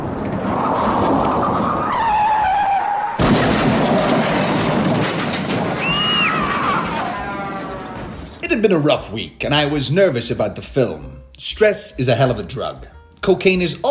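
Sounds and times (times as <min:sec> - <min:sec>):
car tires screeching in a skid: 0:00.0 - 0:04.5, 0:05.6 - 0:08.4
car crashing through a front wall: 0:00.0 - 0:08.4
rumbling noise: 0:00.0 - 0:08.7
speech: 0:08.6 - 0:13.8.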